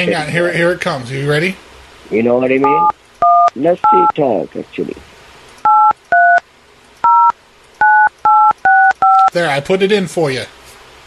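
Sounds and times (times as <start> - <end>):
speech: 0.0 - 3.0, 3.6 - 5.1, 9.3 - 10.6
phone keypad dual-tone beeps dialing a number: 2.6 - 4.2, 5.6 - 6.4, 7.0 - 9.3.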